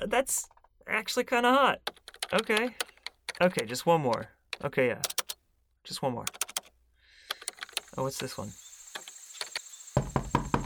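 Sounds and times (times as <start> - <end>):
speech: 0.2 - 2.8, 3.4 - 5.1, 5.8 - 6.4, 8.0 - 8.6
knocking on a door: 10.0 - 10.6.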